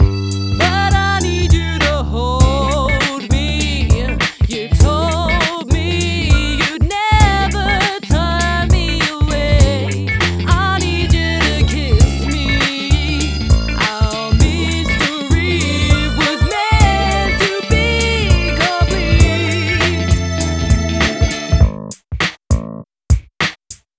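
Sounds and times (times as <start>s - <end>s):
widened vocal mix with reverb: 0.0s - 21.6s.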